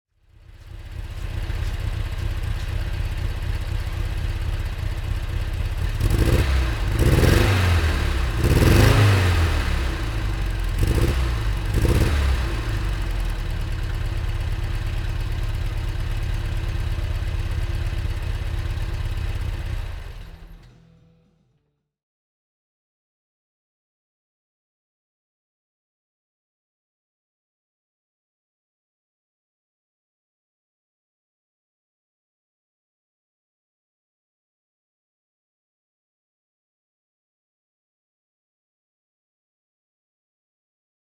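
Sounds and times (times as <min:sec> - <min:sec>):
Lancia Ardea car: 0:00.1 - 0:21.3.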